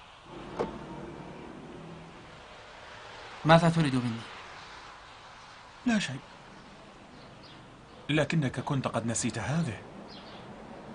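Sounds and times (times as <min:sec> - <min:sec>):
car electric window motor whine: 0:00.3 - 0:02.6
speech: 0:03.4 - 0:04.4, 0:05.8 - 0:06.3, 0:08.1 - 0:09.9.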